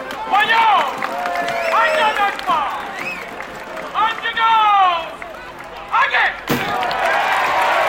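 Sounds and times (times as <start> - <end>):
crowd shouting at a Giglio street festival celebration in Williamsburg Brooklyn: 0.0 - 5.2, 5.9 - 7.8
sharp thud or slam: 6.5 - 6.8.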